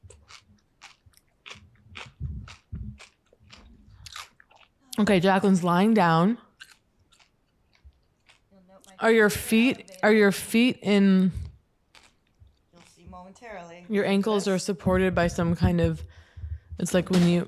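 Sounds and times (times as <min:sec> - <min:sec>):
crisp crunching of food being bitten and chewed: 0:00.0 - 0:05.8, 0:06.5 - 0:09.0, 0:11.4 - 0:13.0
speech: 0:05.0 - 0:06.4, 0:09.0 - 0:11.4, 0:13.3 - 0:16.2, 0:16.8 - 0:17.4.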